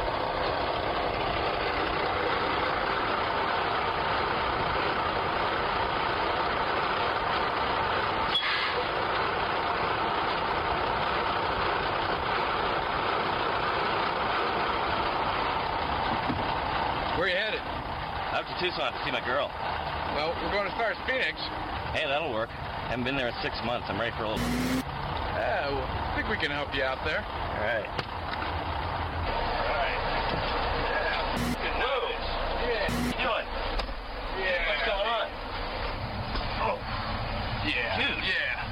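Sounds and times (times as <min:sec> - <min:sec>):
truck engine idling with a steady loud rumble: 0:00.0 - 0:38.7
speech: 0:18.6 - 0:28.1.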